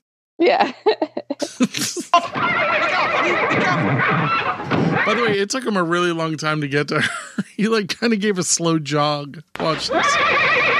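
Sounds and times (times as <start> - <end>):
speech: 0.4 - 1.2, 4.3 - 10.7
laughter: 0.5 - 8.4, 9.6 - 10.2
horse neighing: 2.3 - 5.4, 9.8 - 10.7
horse huffing snorts: 3.5 - 5.4.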